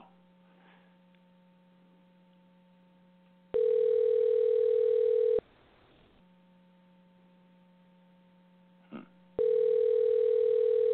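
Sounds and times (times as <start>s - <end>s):
telephone line tone while dialing a call: 3.5s - 5.4s, 9.4s - 10.9s.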